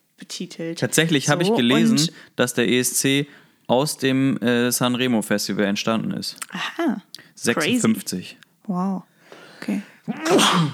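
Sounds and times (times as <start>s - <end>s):
speech: 0.4s - 10.7s
person sneezing: 1.6s - 2.1s, 10.1s - 10.7s.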